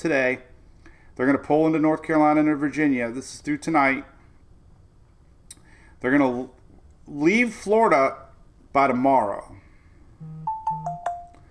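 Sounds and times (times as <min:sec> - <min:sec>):
speech: 0:00.0 - 0:00.5, 0:01.2 - 0:04.1, 0:06.0 - 0:09.6, 0:10.2 - 0:10.9
low buzzing tone: 0:10.2 - 0:11.4
phone notification chime: 0:10.2 - 0:11.4.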